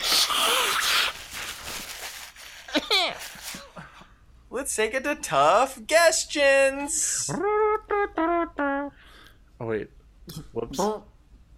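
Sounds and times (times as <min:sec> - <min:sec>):
wordless squeaky vocal noises: 0:00.0 - 0:01.2, 0:07.1 - 0:09.0
person blowing nose into a microphone: 0:00.0 - 0:03.8
speech: 0:04.6 - 0:08.6, 0:09.7 - 0:11.1.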